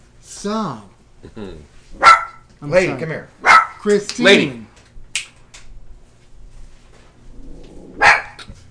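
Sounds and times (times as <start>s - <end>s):
low hum: 0.0s - 8.7s
speech: 0.3s - 4.7s
dog barking: 2.0s - 2.5s, 3.4s - 3.8s, 8.0s - 8.4s.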